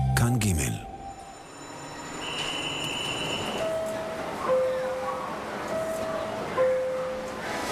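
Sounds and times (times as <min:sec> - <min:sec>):
speech: 0:00.2 - 0:00.9
train high-pitched wheel squeal: 0:01.0 - 0:05.1
train rumbling at a railway station: 0:01.1 - 0:07.6.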